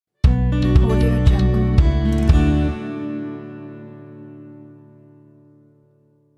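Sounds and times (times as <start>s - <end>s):
acoustic logo jingle: 0.3s - 4.7s.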